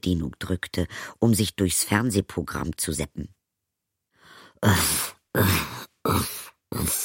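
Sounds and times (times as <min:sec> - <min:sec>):
speech: 0:00.0 - 0:03.4, 0:04.6 - 0:07.0
narrator imitating heavy laboured panting with breathy groaning exhalations: 0:04.3 - 0:07.0.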